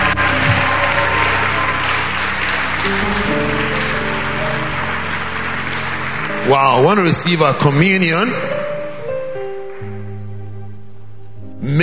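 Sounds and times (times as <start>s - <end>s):
audience applauding: 0.0s - 8.0s
speech: 6.5s - 8.6s.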